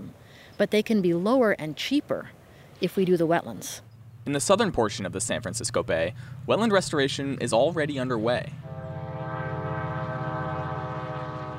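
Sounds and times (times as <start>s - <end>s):
speech: 0.6s - 8.7s
commuter train cars rumbling: 3.7s - 11.5s
commuter train horn blaring: 8.6s - 11.5s.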